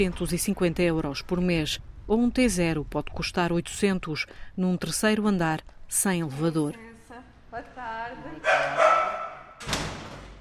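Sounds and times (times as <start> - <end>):
speech: 0.0 - 9.0
female dog barking at a stranger arriving: 8.4 - 9.6.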